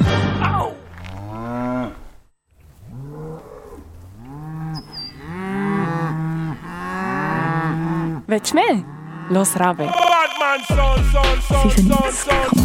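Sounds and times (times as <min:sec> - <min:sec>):
several cows mooing: 0:01.0 - 0:10.7
speech: 0:08.3 - 0:12.6.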